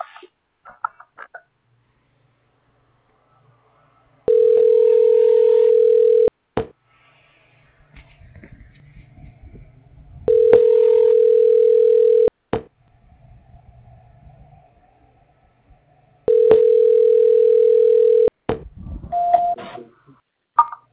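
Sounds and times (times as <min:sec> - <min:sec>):
telephone tone during a call transfer: 0:04.3 - 0:06.3, 0:10.3 - 0:12.3, 0:16.3 - 0:18.3, 0:19.1 - 0:19.6.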